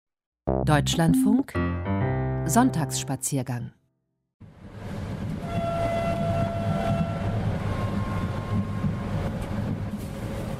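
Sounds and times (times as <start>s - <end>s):
speech: 0.7s - 1.9s, 2.5s - 3.8s
train rolling along the rails with a dense low rumble: 4.4s - 10.5s
faint high squealing tones from the wheels or brakes: 5.4s - 9.5s.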